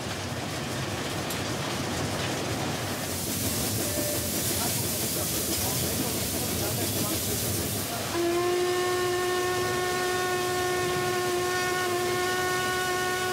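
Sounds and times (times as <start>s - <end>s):
steam locomotive rumbling: 0.0s - 13.3s
steam hissing from a historic steam locomotive: 2.9s - 13.3s
steam locomotive whistle blowing a long steady tone: 3.8s - 4.4s, 8.0s - 13.3s.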